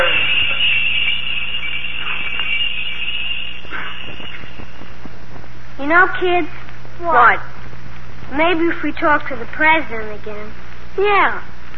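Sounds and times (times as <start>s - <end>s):
bells ringing with a shrill metallic jangle: 0.0s - 5.2s
speech: 5.9s - 7.6s, 8.3s - 11.5s.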